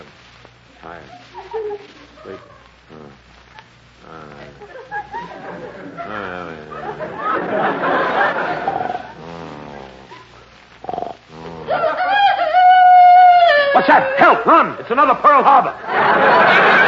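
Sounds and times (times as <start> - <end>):
speech: 0.8 - 3.4, 4.0 - 8.8, 13.8 - 16.8
laughter: 1.0 - 3.1, 4.4 - 10.3, 11.6 - 16.8
chicken crowing: 11.7 - 14.3.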